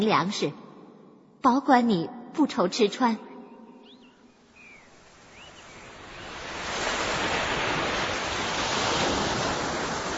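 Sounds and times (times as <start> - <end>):
speech: 0.0 - 0.6, 1.4 - 3.3
sudden strong wind and rain: 4.3 - 10.1.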